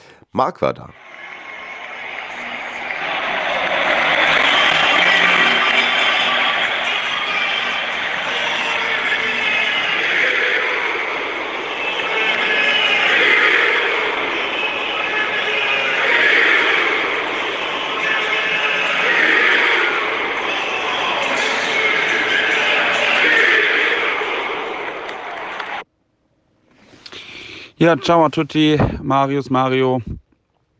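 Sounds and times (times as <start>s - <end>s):
speech: 0.3s - 1.0s, 27.8s - 30.2s
huge stadium crowd cheering a football goal: 0.9s - 25.9s.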